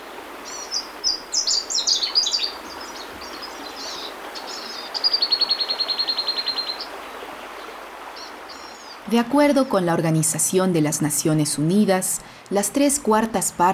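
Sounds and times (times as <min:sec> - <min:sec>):
doves and ground doves singing at dawn: 0:00.0 - 0:09.0
steady hiss: 0:00.0 - 0:09.2
speech: 0:09.1 - 0:13.7.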